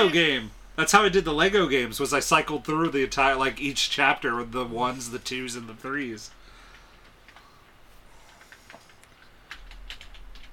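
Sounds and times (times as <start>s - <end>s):
speech: 0.0s - 6.4s
typing on a computer keyboard: 6.6s - 10.5s.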